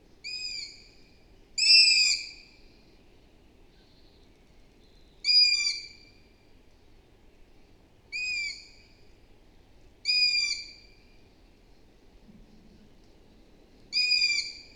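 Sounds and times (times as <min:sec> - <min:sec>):
low steady background noise: 0:00.0 - 0:14.7
Long-eared owl Asio otus high squeaky calls: 0:00.2 - 0:00.8, 0:01.6 - 0:02.4, 0:08.2 - 0:08.7, 0:10.1 - 0:10.8, 0:13.9 - 0:14.7.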